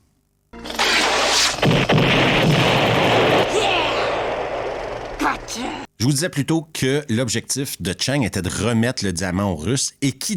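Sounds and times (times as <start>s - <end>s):
explosions from mini-rockets fired by a helicopter: 0.6s - 5.5s
speech: 5.6s - 10.3s.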